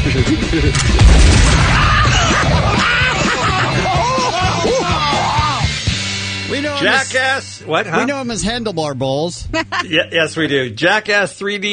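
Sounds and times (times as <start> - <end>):
laughter: 0.0 - 1.0, 1.8 - 5.7, 9.5 - 10.1
speech: 0.6 - 1.0, 6.8 - 11.7
shotgun blast fired during a stunt: 0.7 - 2.6
people yelling and screaming: 1.5 - 5.8.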